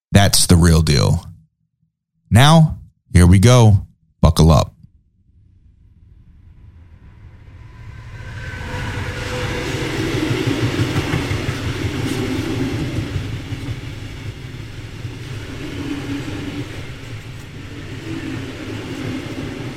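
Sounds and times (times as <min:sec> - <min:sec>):
speech: 0:00.1 - 0:01.3, 0:02.3 - 0:04.7
train rolling along the rails: 0:07.2 - 0:19.7
faint rhythmic clatter of train on rails: 0:09.2 - 0:19.7.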